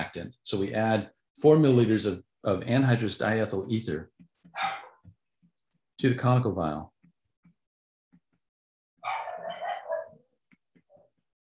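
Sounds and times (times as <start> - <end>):
speech: 0.1 - 4.8, 6.0 - 6.9
dogs barking at home: 4.6 - 5.0, 9.0 - 10.2.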